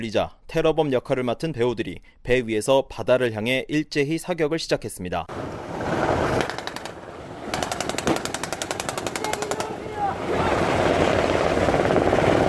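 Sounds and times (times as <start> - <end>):
speech: 0.0 - 5.6
rushing wind-like wash: 5.3 - 7.6, 8.9 - 12.4
helicopter rotor chopping: 6.2 - 12.4.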